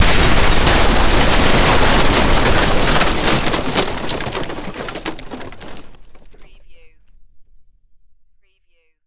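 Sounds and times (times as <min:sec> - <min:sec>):
explosion: 0:00.0 - 0:06.4.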